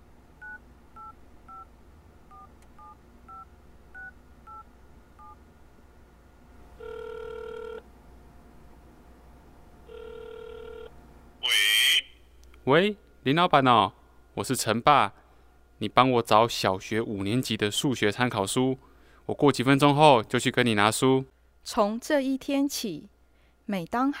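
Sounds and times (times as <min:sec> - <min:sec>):
telephone ringback tones on the line: 0:06.8 - 0:07.8, 0:09.9 - 0:10.9
speech: 0:12.7 - 0:15.2, 0:15.8 - 0:23.1, 0:23.7 - 0:24.1.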